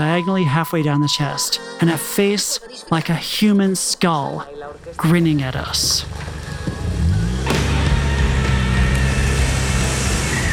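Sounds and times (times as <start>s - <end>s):
speech: 0.2s - 6.4s
tires churning and spraying loose dirt: 4.8s - 10.5s
car engine revving hard: 5.7s - 10.5s.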